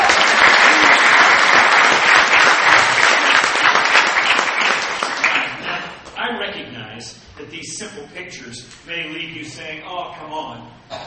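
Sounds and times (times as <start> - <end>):
large audience clapping: 0.0 - 6.0
speech: 7.8 - 11.0.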